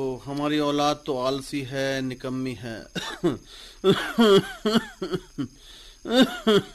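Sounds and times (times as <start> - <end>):
speech: 0.0 - 6.7
man coughing up blood: 3.0 - 5.5, 6.1 - 6.7.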